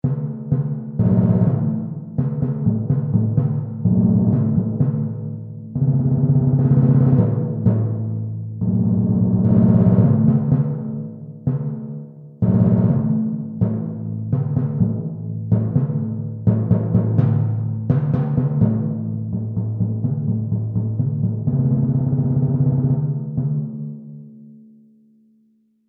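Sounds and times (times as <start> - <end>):
timpani set: 0.0 - 24.4.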